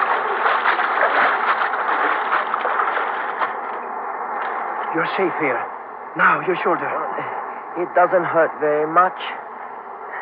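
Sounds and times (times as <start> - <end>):
waterfall rushing water heard from a cave behind the waterfall: 0.0 - 3.7
speech: 5.0 - 9.4.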